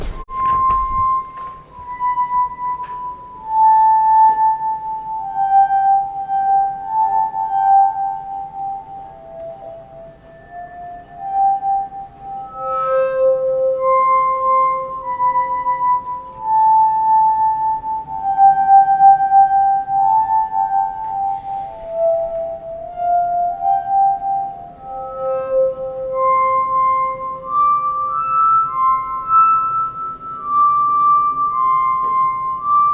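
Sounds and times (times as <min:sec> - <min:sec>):
glass harmonica playing a slow simple one-line melody: 0:00.0 - 0:32.9.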